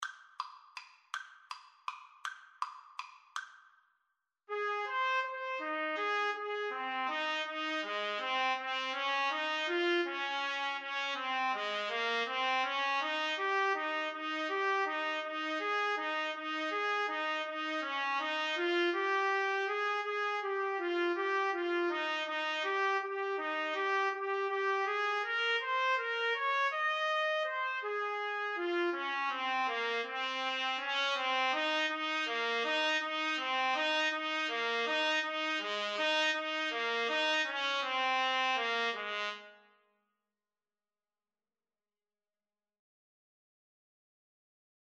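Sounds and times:
trumpet duet: 4.5s - 39.7s.

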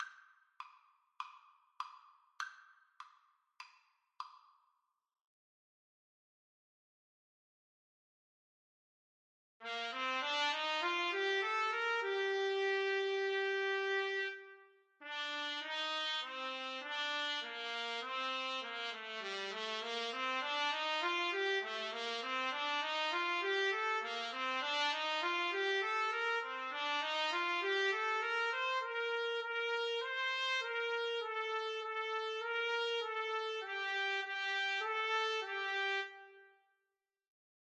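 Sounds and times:
trumpet duet: 9.6s - 36.6s.

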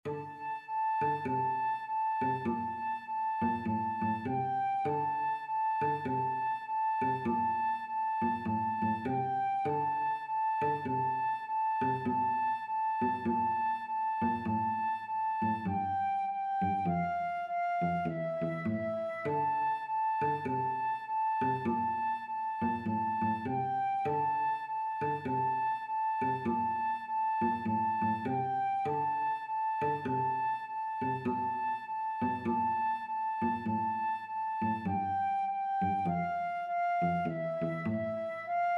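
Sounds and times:
cello in a duet: 0.0s - 38.7s
flute in a duet: 0.0s - 38.7s.

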